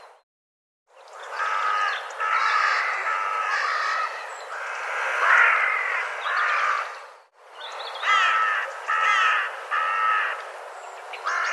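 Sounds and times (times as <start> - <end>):
bird cawing: 1.2 - 7.1, 8.0 - 10.5, 11.2 - 11.5.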